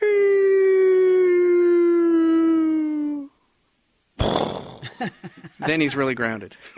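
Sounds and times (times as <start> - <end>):
voice imitating a coyote howling while falling into a canyon: 0.0 - 3.4
speech: 5.0 - 6.7.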